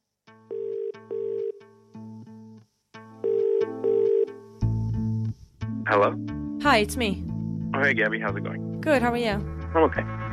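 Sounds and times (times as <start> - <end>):
telephone ringing on an outgoing call: 0.5 - 1.6, 3.2 - 4.4
speech: 5.9 - 10.2.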